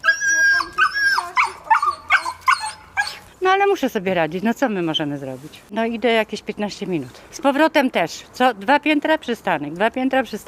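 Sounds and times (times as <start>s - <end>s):
two small dogs whimpering on apartment block stairs: 0.0s - 3.3s
two small dogs yipping and barking on apartment block stairs: 0.4s - 3.2s
speech: 3.6s - 10.4s.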